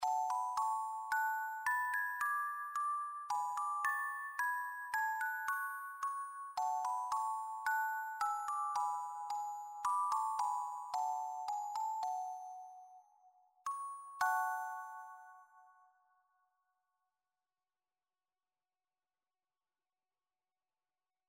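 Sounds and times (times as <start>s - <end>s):
Russian music box celesta melody: 0.0s - 15.8s.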